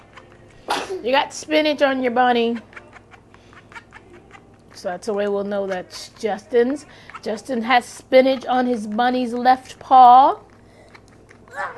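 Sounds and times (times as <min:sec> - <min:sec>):
person sneezing: 0:00.7 - 0:01.0, 0:11.5 - 0:11.7
speech: 0:00.9 - 0:02.7, 0:04.8 - 0:10.5.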